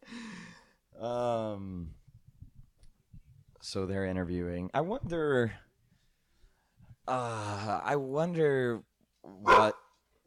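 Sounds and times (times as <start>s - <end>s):
speech: 1.0s - 2.0s, 3.6s - 5.7s, 7.1s - 9.8s
dog barking: 9.4s - 9.9s.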